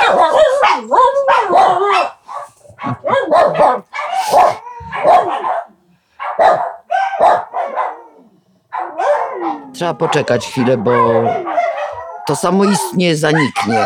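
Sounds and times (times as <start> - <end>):
several dogs barking and yipping in a house: 0.0 - 13.8
people laughing: 2.7 - 3.4
speech: 9.8 - 11.6, 12.3 - 13.8.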